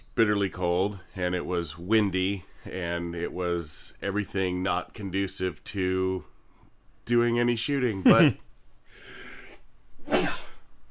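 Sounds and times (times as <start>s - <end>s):
speech: 0.2s - 6.3s, 7.1s - 8.4s
person sneezing outdoors on a bitterly cold windy day: 9.3s - 10.7s.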